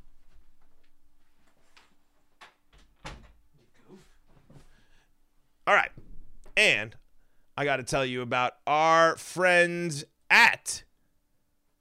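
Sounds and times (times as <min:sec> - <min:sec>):
light door knocks and handle clicks: 0:02.4 - 0:03.4
door closing with a solid thump: 0:02.8 - 0:03.4
speech: 0:05.7 - 0:06.0, 0:06.6 - 0:07.0, 0:07.6 - 0:10.9.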